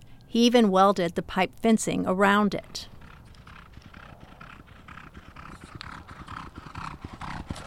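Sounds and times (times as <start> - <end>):
speech: 0.3 - 2.9
horses galloping around a track: 2.5 - 7.6.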